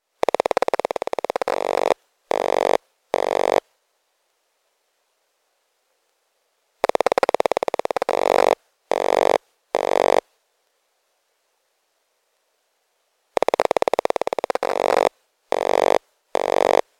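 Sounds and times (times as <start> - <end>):
electromagnetic waves from an iPod searching for a wifi network: 0.0 - 3.6, 6.8 - 10.2, 13.4 - 16.9.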